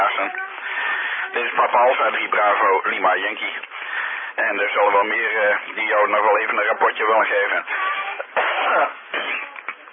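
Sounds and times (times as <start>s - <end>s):
speech: 0.2s - 0.5s, 1.3s - 3.7s, 4.4s - 7.8s, 8.6s - 9.3s
coughing and throat clearing from a tickle in the throat over amateur radio: 8.3s - 9.6s.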